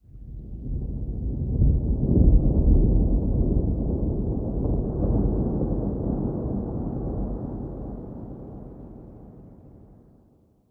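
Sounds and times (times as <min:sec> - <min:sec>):
layered thunder loop: 0:00.8 - 0:09.0.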